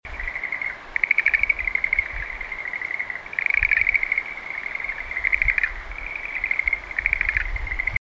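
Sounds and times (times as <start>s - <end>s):
insect trilling: 0.1s - 7.9s.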